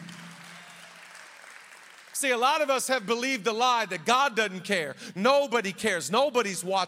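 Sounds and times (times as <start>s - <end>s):
congregation clapping: 0.0s - 4.1s
speech: 2.2s - 6.8s.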